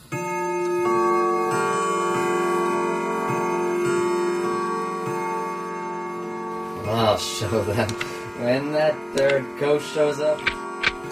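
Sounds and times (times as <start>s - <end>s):
clock striking the hour: 0.0s - 11.0s
speech: 7.4s - 10.6s.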